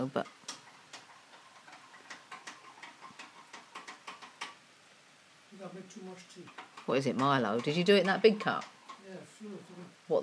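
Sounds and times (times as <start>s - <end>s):
speech: 0.0s - 0.4s, 5.9s - 10.2s
rain pattering: 0.0s - 10.2s.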